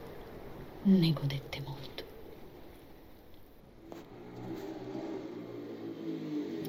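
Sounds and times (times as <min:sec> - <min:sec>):
speech: 0:00.8 - 0:01.6
small scooter engine revving: 0:03.9 - 0:06.6.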